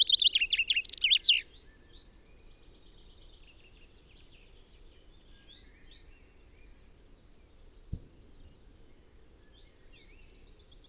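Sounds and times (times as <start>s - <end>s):
common chaffinch Fringilla coelebs song: 0.0s - 1.5s.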